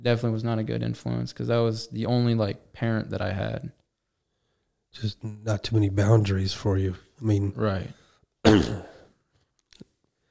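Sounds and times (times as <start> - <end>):
speech: 0.0 - 3.8, 4.9 - 8.9
faint throat sound: 8.4 - 9.1
person coughing: 8.4 - 9.2.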